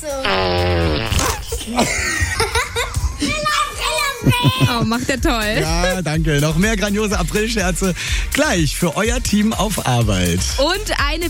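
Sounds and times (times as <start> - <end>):
whoopee cushion blast as a person sits down on it: 0.3 - 1.5
scattered laughter and snickering voices: 1.2 - 8.3
speech: 1.7 - 2.1, 4.6 - 11.2.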